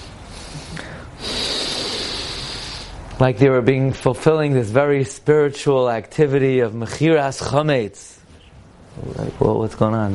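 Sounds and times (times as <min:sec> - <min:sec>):
voice imitating a deep ceremonial breath: 0:00.0 - 0:03.0
speech: 0:03.2 - 0:08.2, 0:09.0 - 0:10.1.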